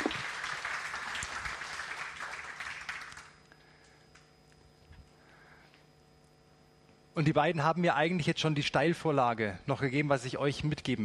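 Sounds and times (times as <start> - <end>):
audience applauding: 0.0 - 3.4
speech: 7.2 - 11.0.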